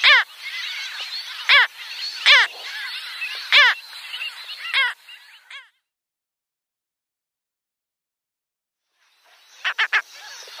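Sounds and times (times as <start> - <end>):
Mediterranean gull calls: 0.0 - 3.8, 4.6 - 5.8, 9.6 - 10.5
chatter of many other gulls: 0.0 - 5.8, 9.2 - 10.5.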